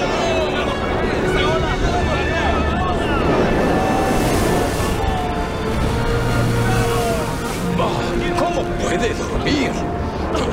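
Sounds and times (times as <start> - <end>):
strong wind howling over a rough sea during a storm: 0.0 - 10.4.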